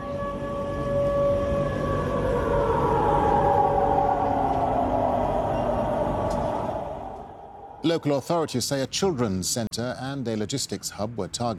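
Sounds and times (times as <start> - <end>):
air raid sirens wailing across a city in Krasnodar region during a drone attack: 0.0 - 8.7
broad rumble of city noise: 1.5 - 9.3
speech: 7.8 - 11.5.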